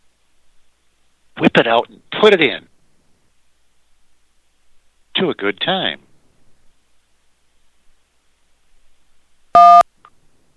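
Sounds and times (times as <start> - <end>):
speech: 1.5 - 2.7, 5.2 - 6.0
short electronic beep: 9.6 - 9.8.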